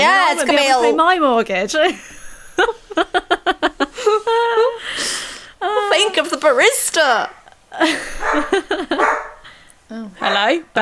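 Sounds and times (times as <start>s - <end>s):
speech: 0.3s - 3.7s, 6.0s - 9.3s, 9.9s - 10.7s
laughter: 1.9s - 4.8s, 7.7s - 9.2s
two dogs barking: 8.2s - 9.5s.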